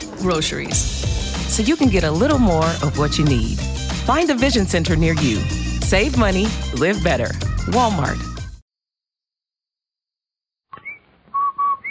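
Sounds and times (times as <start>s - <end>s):
speech: 0.2s - 8.3s
whistled advertising jingle: 10.8s - 11.8s.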